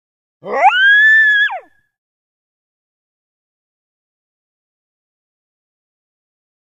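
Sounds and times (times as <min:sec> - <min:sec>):
single coyote howl: 0:00.4 - 0:01.7.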